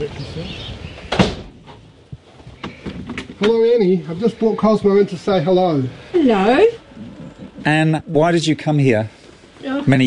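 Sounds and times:
speech: 0.0s - 0.8s, 3.4s - 6.8s, 7.7s - 10.0s
ornate wooden door creaking and thudding: 1.0s - 1.7s, 2.6s - 3.6s.

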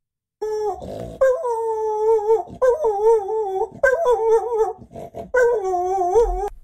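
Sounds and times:
dog howling in high-pitched falsetto tones: 0.4s - 6.5s
noisy snort-like burst: 0.8s - 1.2s, 4.8s - 5.3s.

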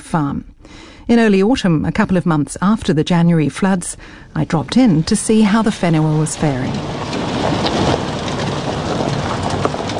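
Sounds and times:
speech: 0.1s - 7.2s
low wind rumble: 2.6s - 9.9s
drizzling rain: 5.0s - 9.9s.

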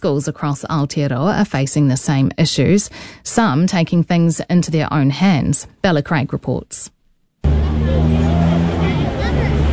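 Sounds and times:
speech: 0.0s - 8.7s
general street bustle outside a school: 7.4s - 9.7s
idling car engines of cars queuing at school gates: 7.4s - 9.7s.

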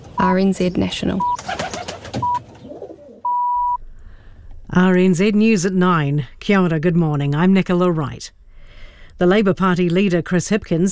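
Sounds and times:
speech: 0.2s - 1.6s, 4.8s - 8.4s, 9.2s - 10.9s
electronic beeps: 1.2s - 1.4s, 2.2s - 2.4s, 3.2s - 3.8s
rock pigeon cooing: 1.2s - 3.3s.

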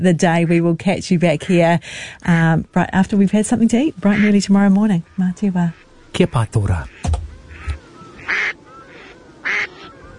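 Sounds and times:
speech: 0.0s - 7.2s
faint low noise: 0.0s - 10.1s
soft bird sounds: 2.1s - 10.1s
grey duck quacking: 4.0s - 4.5s, 5.1s - 10.0s.

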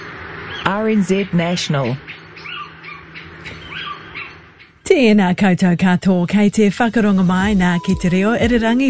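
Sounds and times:
little owl calling: 0.0s - 4.8s
faint hum: 0.0s - 8.8s
speech: 0.7s - 2.2s, 5.0s - 8.8s.

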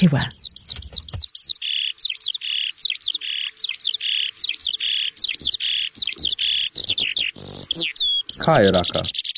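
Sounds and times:
speech: 0.0s - 0.4s, 8.5s - 9.2s
Eurasian skylark singing a high-pitched warble: 0.0s - 9.3s.

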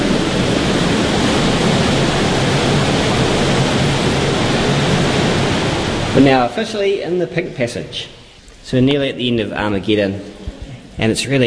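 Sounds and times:
people wading through ankle-deep to knee-deep underground cave stream water: 0.0s - 7.5s
speech: 6.2s - 10.4s, 11.0s - 11.4s.

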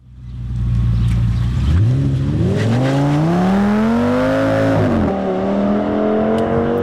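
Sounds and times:
car engine revving hard: 0.9s - 6.8s.

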